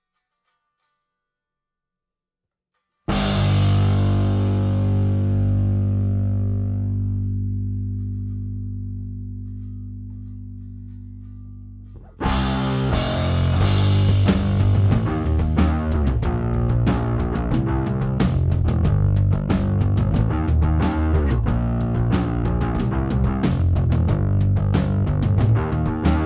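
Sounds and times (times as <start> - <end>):
drums: 3.1 - 7.3, 12.0 - 26.2
bass: 3.1 - 26.2.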